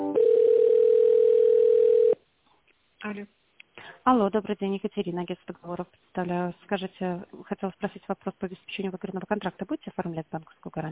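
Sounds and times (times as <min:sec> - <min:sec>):
telephone tones on a business call being transferred: 0:00.1 - 0:02.1
speech: 0:04.1 - 0:10.8.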